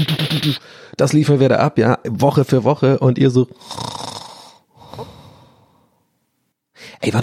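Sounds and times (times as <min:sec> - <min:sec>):
speech: 0:01.0 - 0:04.0, 0:07.0 - 0:07.2
person imitating exaggerated cartoon snore: 0:03.6 - 0:04.6.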